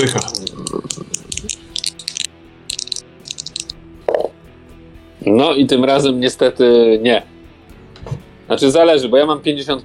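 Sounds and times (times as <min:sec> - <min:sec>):
speech: 0:00.0 - 0:01.0, 0:05.2 - 0:07.3, 0:08.5 - 0:09.8
dice rattling and clattering: 0:00.0 - 0:04.2.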